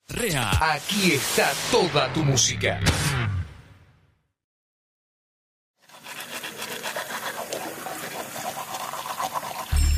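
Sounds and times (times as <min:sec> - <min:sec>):
speech: 0:00.2 - 0:03.4
brief rush: 0:00.7 - 0:02.3
water running from an open tap: 0:06.0 - 0:09.8.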